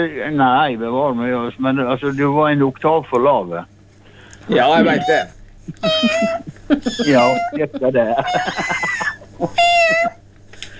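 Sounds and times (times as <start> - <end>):
speech: 0.0 - 3.7, 4.5 - 10.1
person imitating a cat meowing: 4.5 - 7.6, 9.6 - 10.2
laughter: 4.6 - 10.2.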